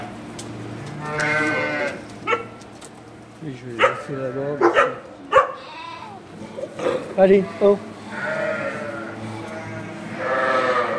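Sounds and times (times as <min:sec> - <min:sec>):
flock of ewes bleating: 0:01.0 - 0:02.0, 0:03.8 - 0:04.6, 0:05.4 - 0:10.9
speech: 0:03.4 - 0:05.1, 0:07.2 - 0:07.9.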